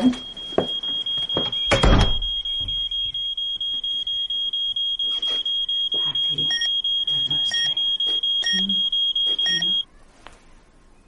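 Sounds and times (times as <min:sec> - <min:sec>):
speech: 0:00.0 - 0:00.3
house alarm beeping: 0:00.0 - 0:09.8
door thudding: 0:01.4 - 0:02.8.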